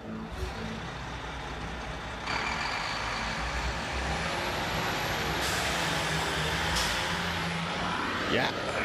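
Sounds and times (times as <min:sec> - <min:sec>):
buses idling with low engine rumble: 0:00.0 - 0:08.8
bus air brakes hissing: 0:05.2 - 0:07.3
speech: 0:08.3 - 0:08.6.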